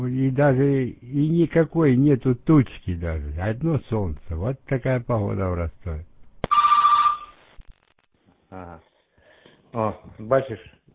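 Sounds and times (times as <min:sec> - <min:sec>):
speech: 0:00.0 - 0:06.1, 0:08.5 - 0:08.9, 0:09.7 - 0:10.8
single electronic telephone ring: 0:06.5 - 0:07.4.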